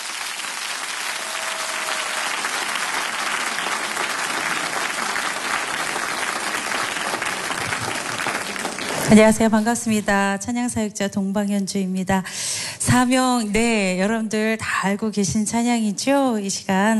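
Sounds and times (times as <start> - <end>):
large audience applauding: 0.0 - 9.4
speech: 9.1 - 16.9.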